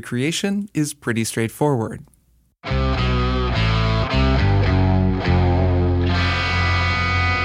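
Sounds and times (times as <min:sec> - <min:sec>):
speech: 0:00.0 - 0:02.2
distorted electric guitar riff: 0:02.6 - 0:07.4.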